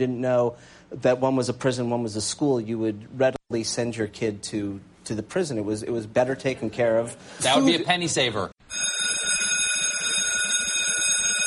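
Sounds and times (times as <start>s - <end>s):
speech: 0.0s - 8.7s
alarm clock ringing with a shrill electronic tone: 8.6s - 11.4s.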